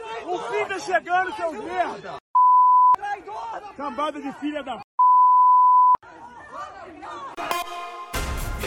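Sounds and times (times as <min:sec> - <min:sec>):
speech: 0:00.3 - 0:02.2, 0:03.3 - 0:04.8
censorship bleep tone: 0:02.4 - 0:03.0, 0:05.0 - 0:06.0.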